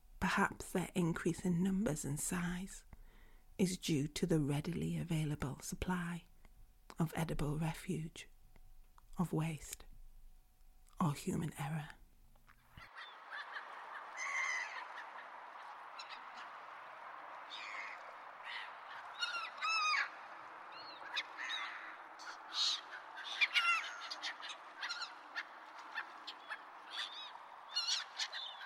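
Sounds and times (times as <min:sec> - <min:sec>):
speech: 0:00.3 - 0:02.9, 0:03.6 - 0:06.3, 0:06.9 - 0:08.3, 0:09.2 - 0:09.9, 0:11.0 - 0:12.0
flock of birds honking and calling: 0:12.8 - 0:28.6.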